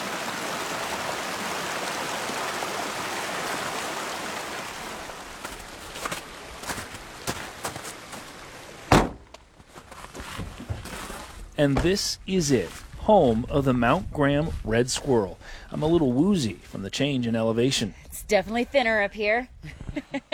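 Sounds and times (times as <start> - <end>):
snowmelt mountain stream cascading amid Douglas fir forest at 9,000 feet: 0.0 - 9.3
footsteps: 5.4 - 15.3
sharp thunk: 8.9 - 9.4
speech: 11.6 - 20.3.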